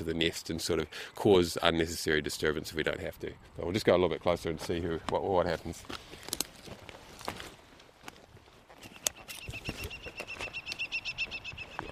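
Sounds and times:
speech: 0.0 - 6.3
rustling through vegetation: 3.4 - 11.9
footsteps through vegetation in recently logged pine forest: 5.7 - 11.9
New Zealand falcon calls: 8.9 - 11.9.

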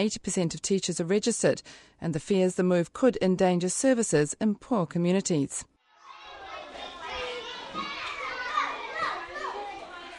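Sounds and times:
speech: 0.0 - 5.7
young children playing noisily at an early childhood centre: 5.9 - 10.1.

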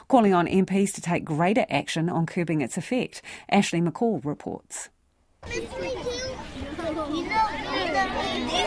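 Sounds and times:
speech: 0.1 - 6.2
crowd of schoolchildren chattering: 5.4 - 8.6.

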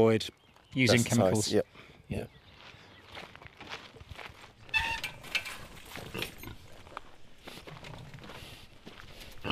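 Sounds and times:
speech: 0.0 - 2.4
footsteps: 2.6 - 9.5
saddleback pigs snuffling: 3.7 - 9.5.

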